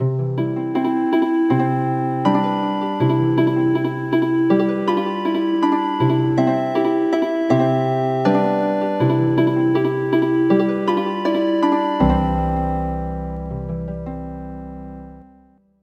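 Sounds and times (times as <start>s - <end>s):
traditional harp music: 0.0s - 15.6s.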